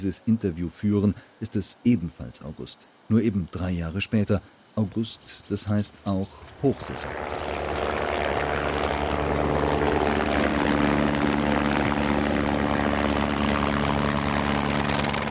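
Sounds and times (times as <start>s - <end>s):
speech: 0.0s - 7.8s
helicopter hovering for supply delivery with rotor beating: 6.2s - 15.2s
low helicopter engine hum: 6.6s - 15.2s.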